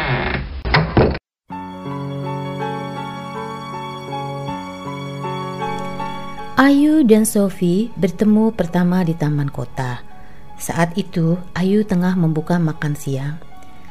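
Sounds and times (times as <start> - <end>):
door shutting with a solid thunk: 0.2 - 1.2
steady music: 1.5 - 13.8
wavering rising-and-falling tone: 2.8 - 7.1
speech: 6.7 - 13.5.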